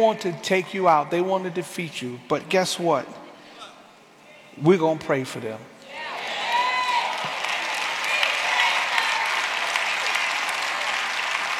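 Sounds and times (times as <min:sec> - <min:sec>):
speech: 0:00.0 - 0:03.2, 0:04.6 - 0:05.7
large audience clapping: 0:06.4 - 0:11.5.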